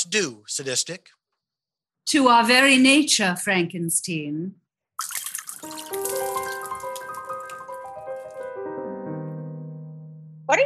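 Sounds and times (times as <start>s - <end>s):
speech: 0.0s - 1.2s, 2.1s - 6.0s, 10.5s - 10.6s
martinis poured from glasses into a sink: 5.0s - 8.5s.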